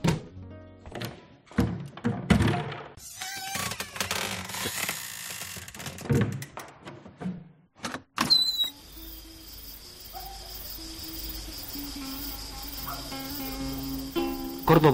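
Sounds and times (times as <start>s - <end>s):
balcony door clicking, rattling and thumping being worked open: 0.9s - 7.0s
insects chirping at night: 8.3s - 14.9s
steady outdoor night hum: 8.3s - 14.9s
speech: 14.7s - 14.9s.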